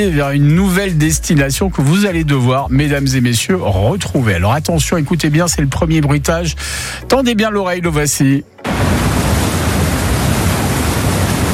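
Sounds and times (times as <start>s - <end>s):
speech: 0.0s - 9.0s
rushing water: 8.6s - 11.5s.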